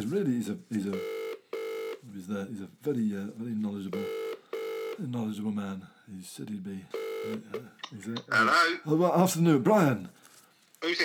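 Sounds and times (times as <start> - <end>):
speech: 0.0 - 1.2, 2.0 - 4.2, 5.0 - 11.0
electronic telephone ringing tone over a phone line on speakerphone: 1.0 - 2.0, 4.0 - 5.0, 7.0 - 7.6.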